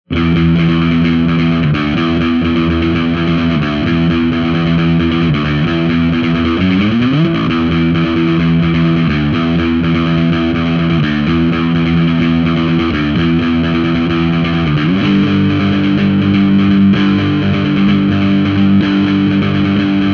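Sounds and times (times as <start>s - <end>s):
overdriven bass guitar: 0.0s - 20.1s.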